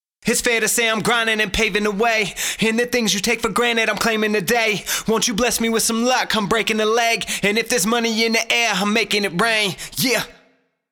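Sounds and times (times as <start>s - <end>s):
person speaking rhythmically with end rhyme: 0.2s - 10.5s
breath: 2.3s - 2.6s, 4.8s - 5.1s, 7.2s - 7.5s.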